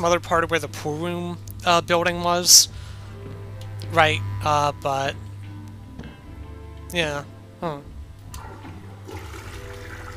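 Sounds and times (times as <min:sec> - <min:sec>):
speech: 0:00.0 - 0:05.2, 0:06.9 - 0:07.9
toilet flushing with mechanical clunk and draining water in a video game: 0:08.5 - 0:10.1.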